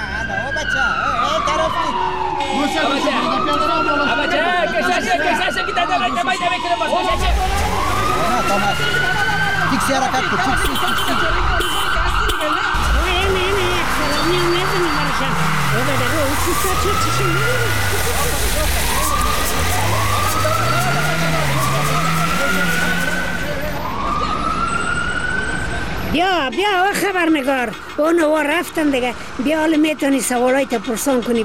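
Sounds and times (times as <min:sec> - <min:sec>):
convoy cars with sirens wailing: 0:00.0 - 0:31.4
steady loud traffic rumble: 0:00.0 - 0:31.4
speech: 0:00.6 - 0:11.7, 0:14.3 - 0:19.0, 0:26.2 - 0:31.4.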